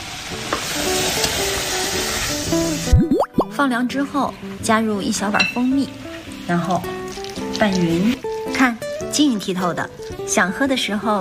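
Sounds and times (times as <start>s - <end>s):
thick syrup bubbling and sizzling in a pan: 0.0s - 3.5s, 4.2s - 10.9s
speech: 3.6s - 11.2s.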